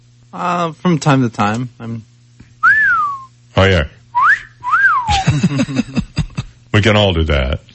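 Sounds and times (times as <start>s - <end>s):
speech: 0.3s - 2.1s, 3.6s - 4.0s, 5.2s - 6.0s, 6.8s - 7.7s
person whistling two tuneful notes: 2.6s - 3.3s, 4.2s - 5.2s
laughter: 5.1s - 6.6s.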